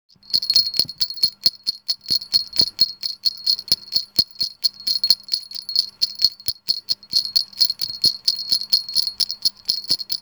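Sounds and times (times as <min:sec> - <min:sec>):
bell: 0:00.2 - 0:10.2.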